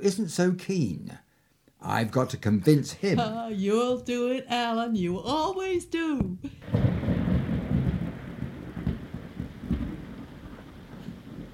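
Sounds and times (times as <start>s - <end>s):
speech: 0.0s - 1.2s, 1.8s - 7.0s
deep thunder rolling and rumbling during a storm: 6.5s - 11.5s
steady falling rain: 6.5s - 11.5s.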